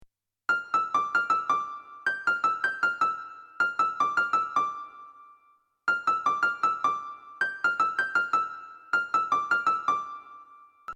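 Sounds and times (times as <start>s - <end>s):
high-pitched piano: 0.5s - 10.9s.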